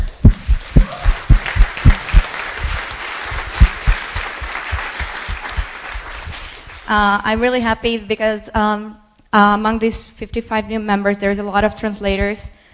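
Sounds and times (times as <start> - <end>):
audience applause from a roomful of people: 0.1 - 6.9
speech: 6.9 - 12.6.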